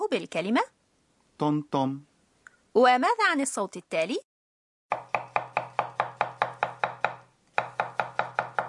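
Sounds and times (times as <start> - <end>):
speech: 0.1 - 0.8, 1.4 - 2.1, 2.8 - 4.3
knife chopping vegetables on a wooden cutting board: 4.9 - 8.6.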